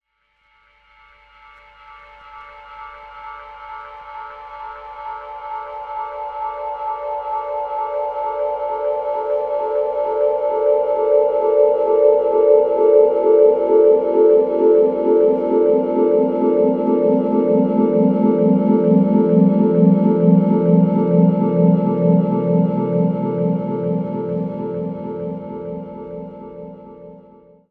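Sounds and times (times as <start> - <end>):
jungle synth pad: 6.4 - 27.6.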